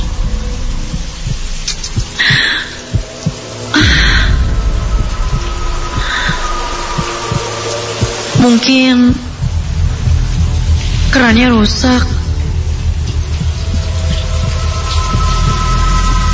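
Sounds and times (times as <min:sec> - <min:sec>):
brief hissy swells: 0:00.0 - 0:16.3
fast pounding heartbeat: 0:00.0 - 0:16.3
murky hum: 0:00.0 - 0:16.3
speech: 0:08.4 - 0:09.3, 0:11.1 - 0:12.2.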